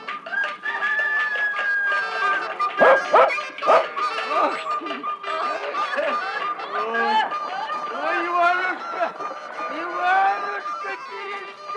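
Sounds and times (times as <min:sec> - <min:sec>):
farmyard clucking: 0:00.0 - 0:10.0
laughter: 0:02.1 - 0:11.7
dog barking: 0:02.8 - 0:03.9.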